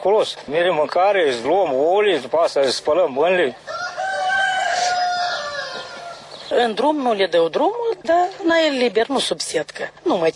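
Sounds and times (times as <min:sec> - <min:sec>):
speech: 0:00.0 - 0:03.8, 0:06.6 - 0:10.3
chicken crowing in a coop: 0:03.7 - 0:06.3.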